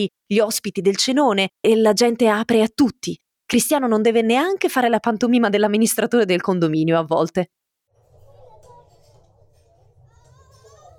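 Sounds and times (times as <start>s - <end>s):
speech: 0.0s - 7.6s
crowd of many children shouting and chattering in an apartment building: 7.9s - 10.9s.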